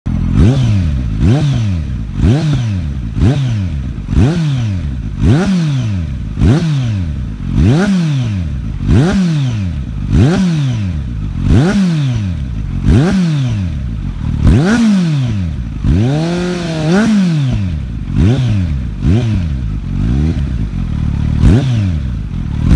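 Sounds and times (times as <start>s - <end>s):
Z900 motorcycle exhaust system: 0.1s - 22.7s.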